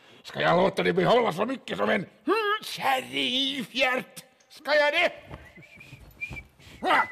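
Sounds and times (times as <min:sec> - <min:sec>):
speech: 0:00.3 - 0:05.4, 0:06.8 - 0:07.0
person whistling a thin high note with sliding pitch: 0:05.4 - 0:07.0.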